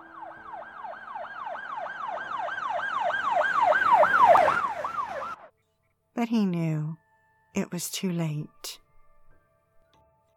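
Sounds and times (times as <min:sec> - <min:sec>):
emergency siren wailing: 0:00.0 - 0:05.5
speech: 0:06.2 - 0:07.0, 0:07.6 - 0:08.8.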